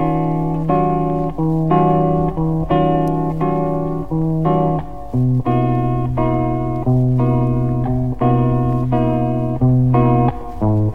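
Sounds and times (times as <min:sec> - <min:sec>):
guitar rhythm loop: 0:00.0 - 0:10.9.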